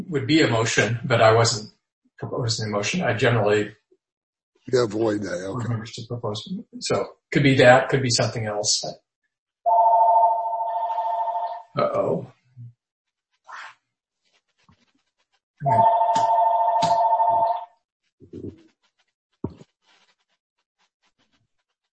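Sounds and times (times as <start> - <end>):
speech: 0.0 - 3.8, 4.7 - 9.0, 11.7 - 12.7, 15.6 - 16.0
telephone ringing during a meeting: 9.7 - 11.7, 15.6 - 17.7.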